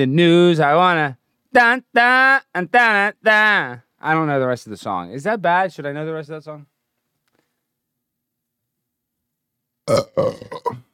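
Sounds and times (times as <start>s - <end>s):
speech: 0.0s - 6.7s, 9.9s - 10.8s
person burping into a microphone: 9.9s - 10.9s.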